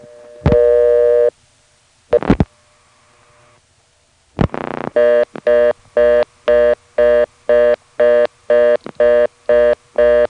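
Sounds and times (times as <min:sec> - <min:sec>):
telephone reorder tone on a local line: 0:00.0 - 0:01.3, 0:04.5 - 0:10.2.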